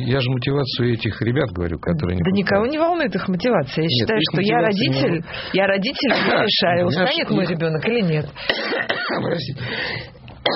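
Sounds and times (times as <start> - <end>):
speech: 0.0 - 10.5
person coughing: 8.4 - 9.4
rough breathy noise: 9.6 - 10.2.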